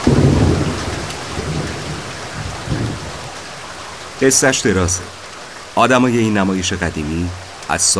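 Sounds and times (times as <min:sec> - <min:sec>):
deep rolls of thunder: 0:00.0 - 0:05.1
heavy spring rain: 0:00.0 - 0:07.9
speech: 0:04.2 - 0:05.2, 0:05.8 - 0:07.9.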